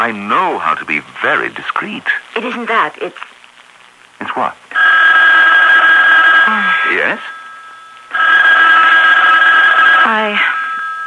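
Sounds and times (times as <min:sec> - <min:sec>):
speech: 0:00.0 - 0:03.3, 0:04.4 - 0:04.6, 0:06.5 - 0:07.3, 0:10.1 - 0:10.5
telephone ringing with a buzzing trill: 0:04.7 - 0:11.0.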